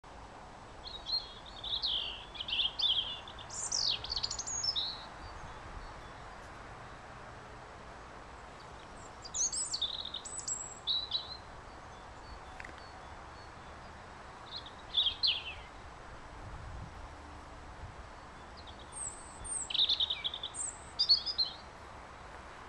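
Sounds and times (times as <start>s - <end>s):
robin chirping: 0.8s - 7.0s, 8.5s - 15.8s, 18.2s - 21.7s.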